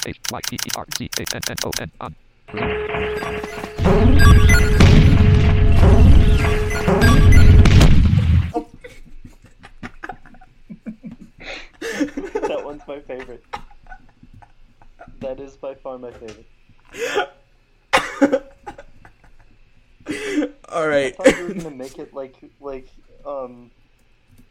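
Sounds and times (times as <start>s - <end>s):
scattered clicks and ticks: 0.0s - 1.9s
speech: 0.0s - 4.7s, 12.9s - 13.6s, 15.2s - 17.3s, 20.4s - 23.8s
video game hyper cannon blasts: 2.6s - 8.5s
laughter: 8.6s - 15.2s.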